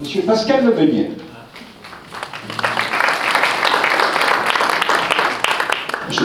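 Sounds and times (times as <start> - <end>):
speech: 0.3 - 1.3
audience applause: 1.8 - 6.2.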